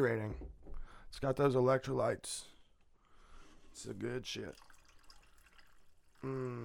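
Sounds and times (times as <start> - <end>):
speech: 0.0 - 2.5, 3.8 - 4.7, 6.2 - 6.6
faint trickling: 3.8 - 6.6
cola pouring into a cup with whiskey: 4.3 - 6.4.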